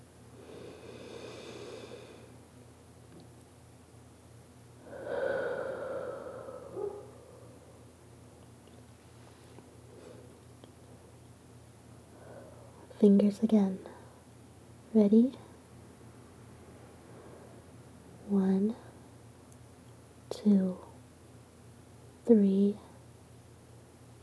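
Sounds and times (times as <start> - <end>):
deep breathing during a guided breathing exercise: 0.4 - 2.4, 4.8 - 7.9, 12.1 - 12.8
speech: 13.0 - 13.9, 15.0 - 15.4, 22.3 - 22.8.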